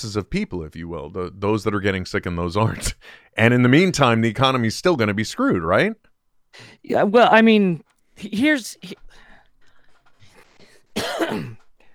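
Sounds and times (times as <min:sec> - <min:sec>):
speech: 0:00.0 - 0:09.0, 0:11.0 - 0:11.6
harsh coughing: 0:10.6 - 0:11.7.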